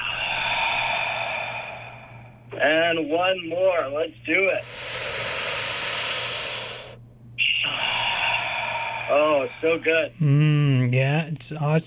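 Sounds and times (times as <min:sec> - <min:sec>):
huge breath exhale during a breathing exercise: 0:00.0 - 0:02.6, 0:04.6 - 0:10.1
speech: 0:02.6 - 0:05.0, 0:09.1 - 0:11.8.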